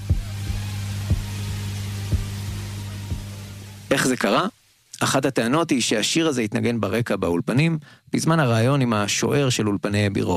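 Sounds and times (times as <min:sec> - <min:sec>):
heartbeat thumping in low double beats: 0:00.0 - 0:00.4, 0:01.1 - 0:01.4, 0:03.1 - 0:03.4
constant low hum: 0:00.0 - 0:04.4
speech: 0:04.0 - 0:10.3.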